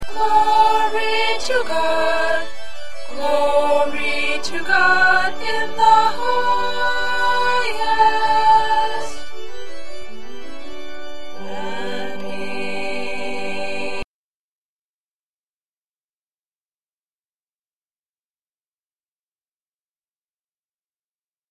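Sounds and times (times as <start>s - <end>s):
alto voice singing: 0.0s - 9.4s, 11.4s - 14.0s.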